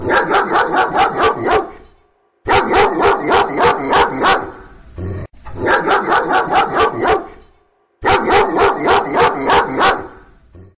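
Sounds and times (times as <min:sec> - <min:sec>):
dog barking: 0:00.0 - 0:04.7, 0:05.6 - 0:07.4, 0:08.0 - 0:10.3.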